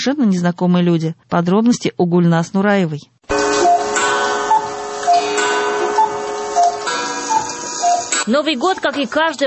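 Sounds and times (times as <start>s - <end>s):
speech: 0.0s - 3.1s, 8.3s - 9.4s
collection of dozens of large, small, antique and modern clocks ticking: 3.3s - 9.4s.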